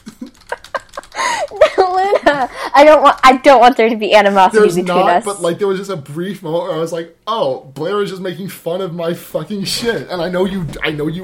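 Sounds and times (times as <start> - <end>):
typing on a computer keyboard: 0.1 - 1.9, 2.9 - 3.6
speech: 1.5 - 11.2.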